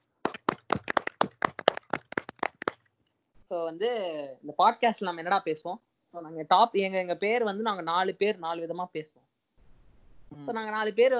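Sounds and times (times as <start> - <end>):
small group clapping hands: 0.0 - 2.8
speech: 3.5 - 9.2, 10.4 - 11.1.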